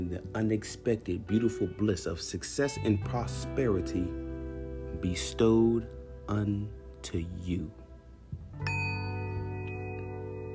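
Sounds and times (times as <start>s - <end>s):
speech: 0.0s - 4.2s, 5.0s - 7.8s
bell struck and ringing: 8.6s - 10.2s.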